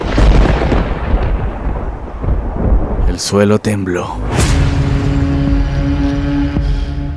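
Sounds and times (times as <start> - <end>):
violent storm thunder rumbling: 0.0 - 7.1
speech: 3.2 - 4.6.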